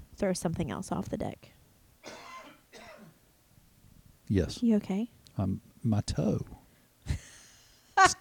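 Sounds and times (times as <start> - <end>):
speech: 0.2 - 1.6, 4.3 - 7.2, 8.1 - 8.2
raspy coughs: 2.0 - 3.2.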